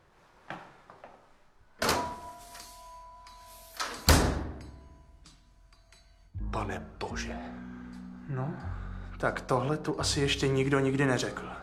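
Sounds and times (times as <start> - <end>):
heavy door of an old temple thudding as it swings and settles: 4.1 - 4.6
speech: 6.6 - 7.6, 8.3 - 11.6.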